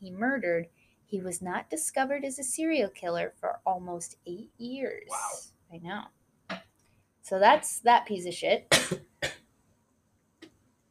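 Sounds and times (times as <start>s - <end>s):
speech: 0.0s - 6.6s, 7.2s - 9.4s
person coughing: 8.7s - 9.4s.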